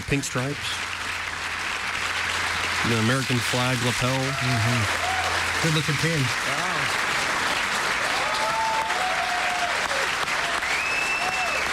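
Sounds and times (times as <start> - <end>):
speech: 0.0 - 0.9, 2.8 - 5.0, 5.6 - 6.6
large crowd giving a standing ovation: 0.0 - 11.7
scattered whistles and cheers from a crowd: 4.2 - 5.5, 8.0 - 11.7.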